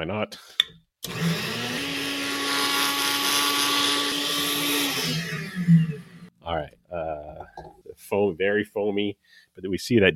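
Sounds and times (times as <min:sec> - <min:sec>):
speech: 0:00.0 - 0:01.6, 0:08.1 - 0:10.1
blender whirring while blending wine: 0:01.0 - 0:06.3.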